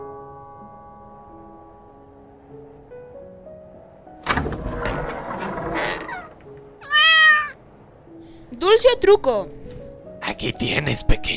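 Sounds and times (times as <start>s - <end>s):
clattering and rustling noises: 4.2s - 6.8s
cat giving a short clear meow: 6.1s - 7.6s
speech: 8.8s - 9.6s, 10.4s - 11.3s.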